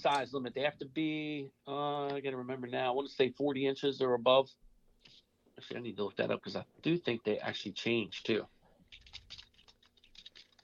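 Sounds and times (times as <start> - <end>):
speech: 0.0 - 8.6
fast typing on a computer keyboard: 8.9 - 10.6.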